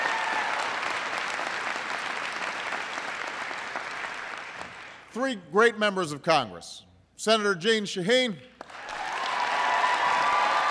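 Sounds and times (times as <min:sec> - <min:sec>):
large audience applause: 0:00.0 - 0:05.0, 0:08.6 - 0:10.7
speech: 0:05.2 - 0:08.5.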